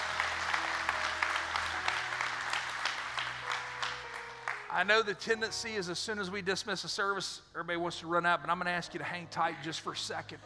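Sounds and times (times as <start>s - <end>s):
congregation clapping at a Sunday church service: 0.0s - 5.1s
speech: 4.8s - 10.4s.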